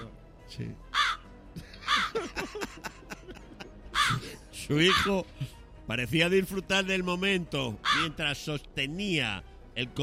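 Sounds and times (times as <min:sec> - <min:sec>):
speech: 0:00.5 - 0:00.9, 0:01.6 - 0:03.2, 0:04.1 - 0:10.0
crow cawing and croaking: 0:00.9 - 0:02.4, 0:03.8 - 0:05.2, 0:07.8 - 0:08.2
laughter: 0:01.6 - 0:04.4.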